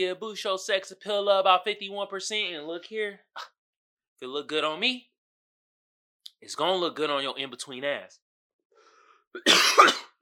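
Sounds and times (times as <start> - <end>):
speech: 0.0 - 3.6, 4.2 - 5.1, 6.4 - 8.2, 9.3 - 10.1
person clearing throat: 9.4 - 10.2
person coughing harshly: 9.4 - 10.2.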